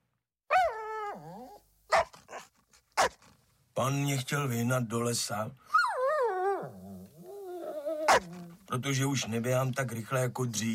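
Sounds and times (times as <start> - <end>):
old dog whining: 0.5 - 2.5, 5.7 - 8.7
old dog barking gruffly: 1.9 - 3.2, 8.0 - 8.4
speech: 3.8 - 5.7, 8.2 - 10.7.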